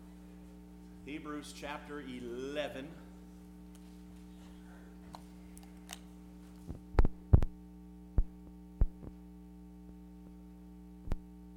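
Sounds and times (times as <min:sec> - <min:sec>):
steady electrical hum: 0:00.0 - 0:11.5
speech: 0:01.1 - 0:03.1
heartbeat sound effect: 0:06.7 - 0:09.2.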